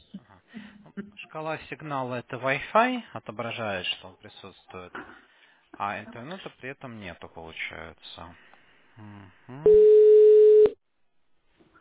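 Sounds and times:
speech: 0:01.3 - 0:09.8
steady electronic telephone tone after a dropped call: 0:09.7 - 0:10.8.

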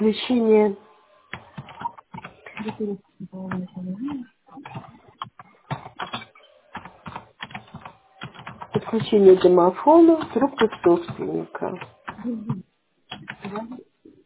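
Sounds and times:
speech: 0:00.0 - 0:00.8, 0:02.6 - 0:05.0, 0:08.9 - 0:12.6
fingers typing on a computer keyboard: 0:01.3 - 0:02.8, 0:04.6 - 0:12.3, 0:13.1 - 0:13.8
faint person murmuring: 0:02.6 - 0:05.0, 0:10.2 - 0:12.7.

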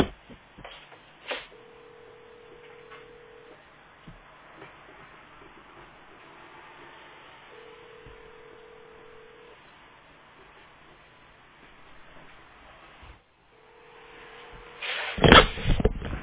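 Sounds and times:
faint hissy telephone line: 0:01.2 - 0:03.7, 0:04.7 - 0:09.9, 0:13.6 - 0:15.6
telephone call tone beep: 0:01.6 - 0:03.6, 0:07.5 - 0:09.6.

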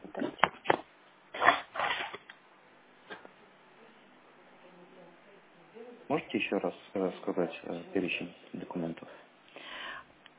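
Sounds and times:
sheet of paper being grabbed: 0:01.4 - 0:02.3
speech: 0:06.1 - 0:09.3.

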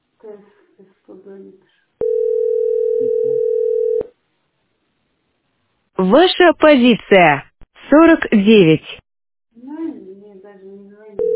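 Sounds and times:
speech: 0:00.2 - 0:01.8, 0:06.0 - 0:09.0
telephone ringing tone on a call: 0:02.0 - 0:04.1.

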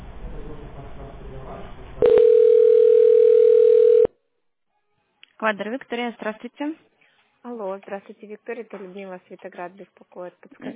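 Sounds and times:
telephone line tone while a call is transferred: 0:02.0 - 0:04.1
speech: 0:05.4 - 0:10.7.

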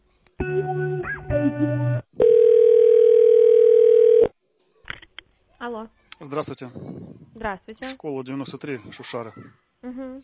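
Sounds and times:
speech: 0:01.5 - 0:02.0, 0:05.8 - 0:10.2
short burst of electronic telephone tones while a call is transferred: 0:02.2 - 0:04.3.

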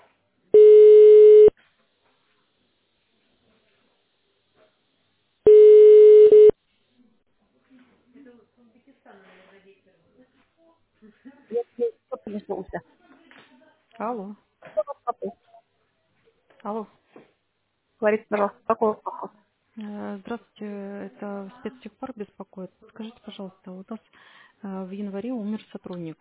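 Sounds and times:
buzzy telephone line beeps while call is transferred to an operator: 0:00.6 - 0:01.5, 0:05.5 - 0:06.6
speech: 0:14.0 - 0:14.4, 0:18.0 - 0:19.3.

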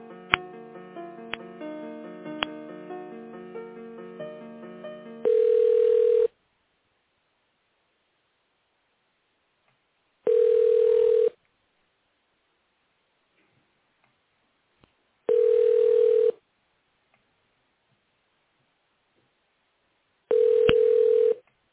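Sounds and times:
telephone ringback tones while a call is transferred: 0:05.2 - 0:06.3, 0:10.3 - 0:11.3, 0:15.3 - 0:16.3, 0:20.3 - 0:21.4.

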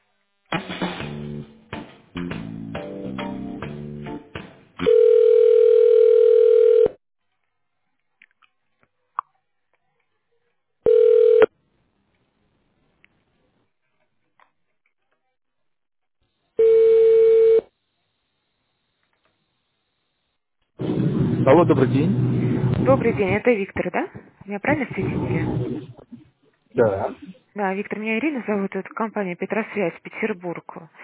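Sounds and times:
telephone line tones while a call is being connected: 0:04.8 - 0:07.0, 0:10.9 - 0:11.5, 0:16.6 - 0:17.7
steady telephone line beeps: 0:10.9 - 0:11.5, 0:16.6 - 0:17.6
speech: 0:21.5 - 0:22.3, 0:22.9 - 0:26.0, 0:26.8 - 0:31.0.

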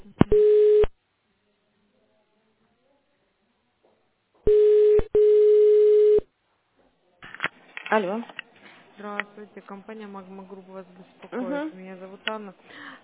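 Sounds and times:
telephone line beeps while a business call is transferred: 0:00.3 - 0:00.9, 0:04.5 - 0:06.3
speech: 0:07.9 - 0:08.4, 0:09.0 - 0:13.0.

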